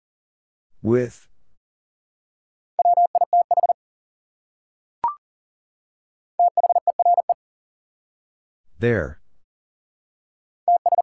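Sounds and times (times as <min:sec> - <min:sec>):
speech: 0:00.8 - 0:01.3, 0:08.8 - 0:09.2
Morse code CW beeps at 40 words per minute: 0:02.8 - 0:03.8, 0:06.4 - 0:07.4, 0:10.7 - 0:11.0.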